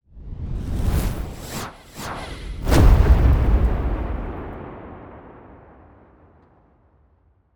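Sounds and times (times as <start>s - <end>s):
swirling flames whoosh: 0.6s - 4.6s
thunderous cinematic impact: 2.6s - 6.4s.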